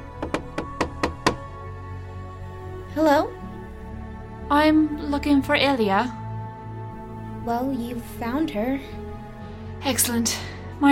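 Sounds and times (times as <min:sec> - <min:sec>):
sharp knocking on a door: 0:00.1 - 0:01.5
speech: 0:03.0 - 0:03.4, 0:04.6 - 0:06.2, 0:07.4 - 0:09.0, 0:09.8 - 0:10.9.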